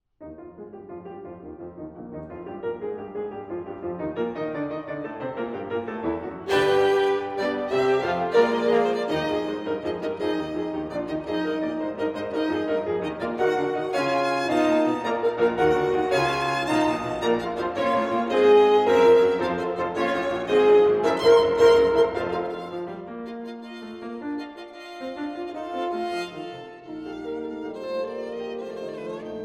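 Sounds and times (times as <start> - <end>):
piano: 0.0 - 29.4
violin: 4.0 - 29.4
horn: 6.4 - 22.8.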